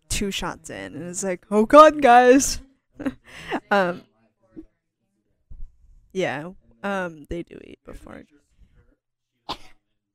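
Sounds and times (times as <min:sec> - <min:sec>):
speech: 0:00.2 - 0:04.1, 0:06.1 - 0:08.4
sneeze into the microphone: 0:09.5 - 0:09.8.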